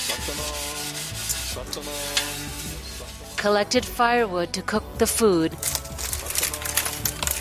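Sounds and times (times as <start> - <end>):
scrubbing dishes with rubbing scrape: 0.0 - 4.0
speech: 0.2 - 0.7, 1.6 - 5.8.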